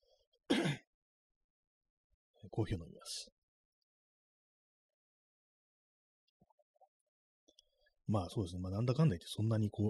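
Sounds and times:
short gruff throat clearing: 0.5 - 0.9
speech: 2.4 - 3.4, 8.1 - 9.8.

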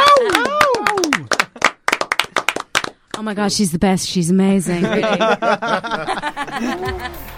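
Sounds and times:
sliding vocal whoops: 0.0 - 1.3
uneven hand clapping from a small group: 0.0 - 3.2
speech: 3.2 - 7.2
laughter: 4.7 - 7.3.

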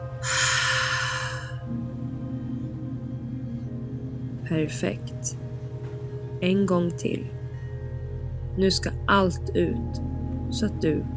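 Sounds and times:
low steady hum: 0.0 - 11.1
deep breath in through the nose during a guided breathing exercise: 0.2 - 1.6
speech: 4.5 - 5.4, 6.4 - 7.4, 8.6 - 11.1.

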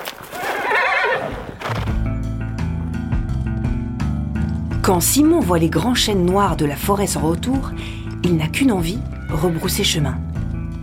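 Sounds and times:
pony galloping hoofbeats: 0.0 - 10.8
pony whinnying: 0.3 - 1.7, 9.0 - 10.0
speech: 4.9 - 10.2.

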